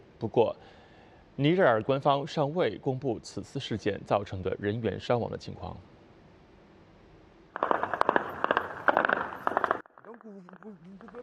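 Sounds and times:
speech: 0.2s - 0.8s, 1.4s - 5.9s
dense rapid gunshots during attempted mutiny in Niamey Niger: 7.6s - 9.9s.

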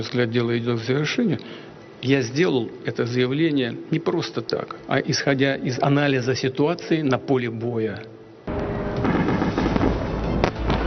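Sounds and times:
speech: 0.0s - 8.2s
explosions echoing at night in Kyiv during an air raid alert: 8.5s - 10.8s
sharp blast: 8.5s - 10.8s.

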